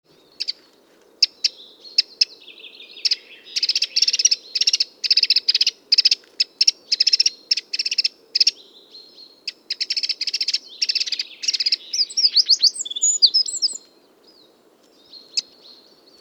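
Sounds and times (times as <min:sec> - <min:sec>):
Eurasian wren giving hard ticking calls: 0:00.3 - 0:00.6, 0:01.2 - 0:14.0, 0:15.0 - 0:16.1
Eurasian wren high trilled phrase: 0:11.1 - 0:13.8.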